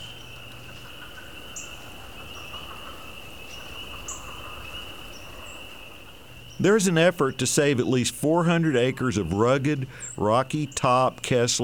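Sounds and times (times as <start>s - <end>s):
chorus of spring peepers and leopard frogs at night: 0.0s - 11.6s
speech: 6.6s - 11.6s.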